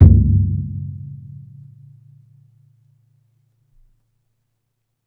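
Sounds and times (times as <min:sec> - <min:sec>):
painted drum: 0:00.0 - 0:00.6.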